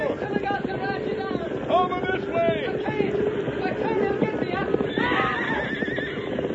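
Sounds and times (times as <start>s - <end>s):
dense drumming of galloping hooves: 0.0s - 6.5s
horse neighing and whinnying: 4.9s - 6.5s.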